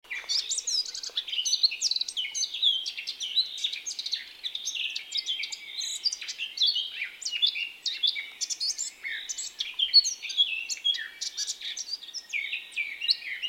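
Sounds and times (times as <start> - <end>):
Eurasian blackcap Sylvia atricapilla song: 0.1 - 13.4.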